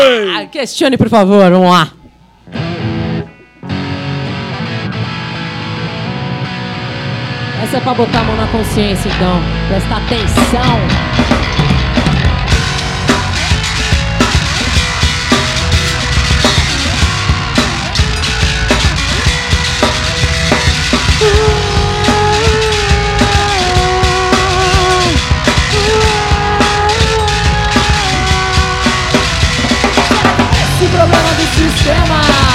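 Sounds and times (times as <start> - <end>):
speech: 0.1 - 2.6, 7.6 - 11.2
full driving band playing: 2.4 - 32.5
person singing a vocal melody: 21.1 - 32.5.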